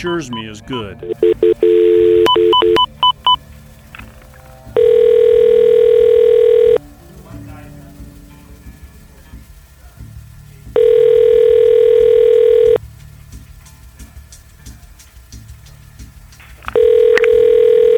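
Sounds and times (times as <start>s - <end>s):
speech: 0.0s - 2.9s
faint hum: 0.0s - 17.9s
telephone keypad dialing tones: 1.1s - 3.4s, 4.8s - 6.8s, 10.8s - 12.8s, 16.8s - 17.9s.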